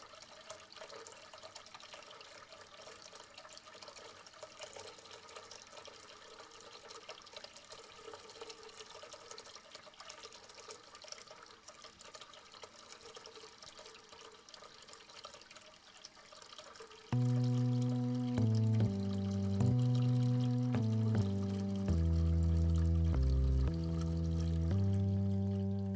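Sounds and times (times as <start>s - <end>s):
tap running into a filling bathtub: 0.0s - 25.9s
melodic music: 17.2s - 25.9s.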